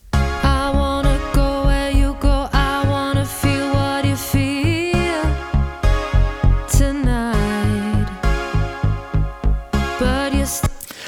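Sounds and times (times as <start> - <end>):
steady pulsing beat and bass: 0.0 - 10.6
dry sung vocal without delay: 0.3 - 5.8, 6.7 - 8.4, 10.0 - 11.0.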